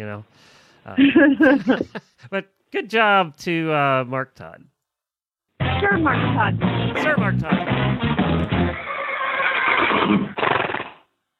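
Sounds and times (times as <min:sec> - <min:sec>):
speech: 0:00.0 - 0:04.7, 0:05.8 - 0:08.5, 0:09.9 - 0:10.4
laughter: 0:01.0 - 0:02.3
horse whinnying: 0:08.7 - 0:11.1.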